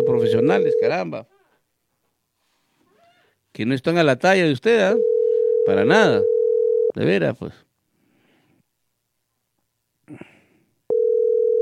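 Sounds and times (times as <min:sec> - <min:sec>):
telephone line tone on an unanswered call: 0:00.0 - 0:01.0, 0:05.0 - 0:06.9, 0:10.9 - 0:11.6
speech: 0:00.2 - 0:01.4, 0:03.6 - 0:07.6.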